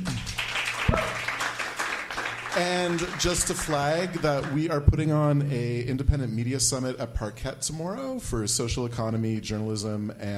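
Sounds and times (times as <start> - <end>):
audience applause after a group conversation at a summit event: 0.0 - 4.7
speech: 2.6 - 10.3.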